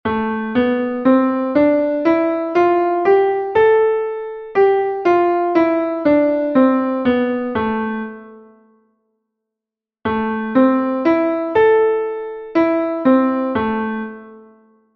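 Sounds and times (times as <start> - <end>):
A minor scale and arpeggio: 0.1 - 8.5, 10.1 - 14.4.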